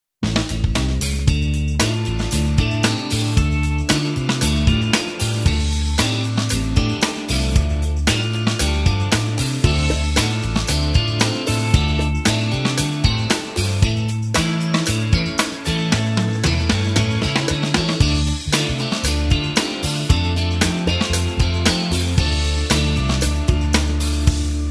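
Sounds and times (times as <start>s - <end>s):
purple electric guitar: 1.3s - 24.6s.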